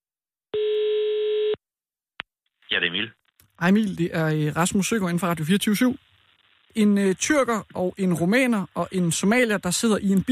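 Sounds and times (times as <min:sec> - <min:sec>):
telephone ringing tone while placing a call: 0:00.6 - 0:01.6
speech: 0:02.7 - 0:06.1, 0:06.8 - 0:10.2.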